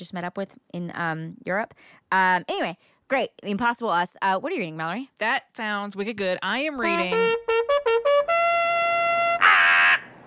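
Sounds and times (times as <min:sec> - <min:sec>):
speech: 0:00.1 - 0:07.5
bird call with harsh nasal notes and raspy burst: 0:08.8 - 0:10.2.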